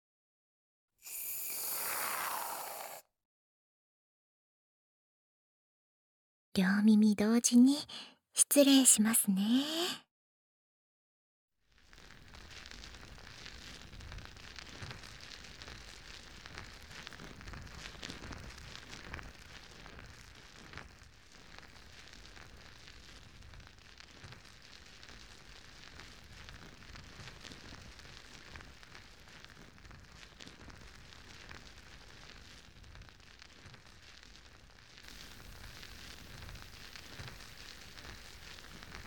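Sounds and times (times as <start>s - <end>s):
soap foam fizzing and popping at the ears: 1.1s - 3.0s, 35.1s - 39.0s
speech: 6.6s - 10.0s.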